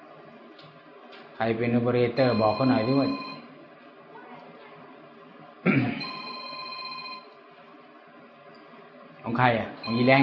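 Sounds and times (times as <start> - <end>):
faint noise: 0.0 - 10.2
speech: 1.4 - 3.3, 9.4 - 10.2
telephone ringing: 2.2 - 3.5, 6.0 - 7.4, 9.8 - 10.2.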